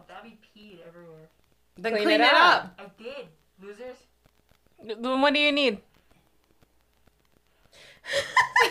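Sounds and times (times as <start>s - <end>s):
speech: 0.2s - 4.1s, 4.8s - 5.9s, 8.0s - 8.6s
heavy gasping breaths: 7.7s - 8.2s.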